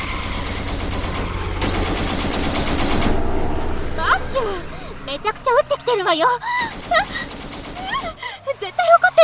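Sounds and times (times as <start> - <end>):
submachine gun fire: 0.2 - 3.3, 6.7 - 8.2
laughter: 4.1 - 9.2
speech: 5.3 - 7.2.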